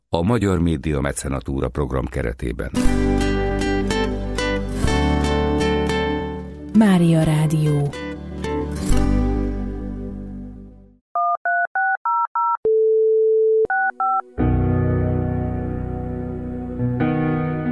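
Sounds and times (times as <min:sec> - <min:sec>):
speech: 0:00.1 - 0:03.3, 0:06.8 - 0:08.0
music: 0:02.8 - 0:11.0, 0:13.8 - 0:17.6
dual-tone telephone keypad beeps: 0:11.2 - 0:14.2.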